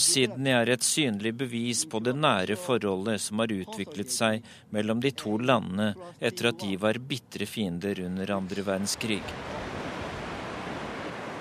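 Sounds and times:
speech: 0:00.0 - 0:09.6
ocean waves breaking on the shore: 0:08.8 - 0:11.3.

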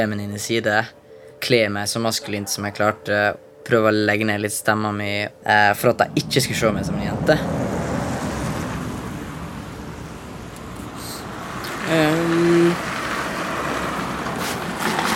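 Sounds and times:
speech: 0:00.0 - 0:07.6
street traffic rumbling at a bus stop: 0:05.3 - 0:15.1
tonal whine: 0:05.4 - 0:11.7.

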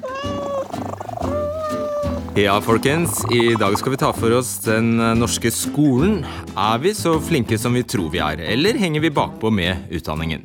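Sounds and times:
cat meowing in long plaintive calls: 0:00.0 - 0:04.2
speech: 0:02.4 - 0:10.4.

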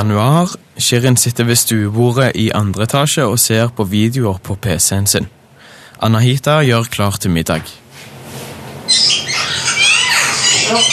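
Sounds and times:
speech: 0:00.0 - 0:05.4, 0:06.0 - 0:07.8, 0:08.9 - 0:09.2, 0:10.7 - 0:10.9
bird chirping: 0:08.9 - 0:10.9.

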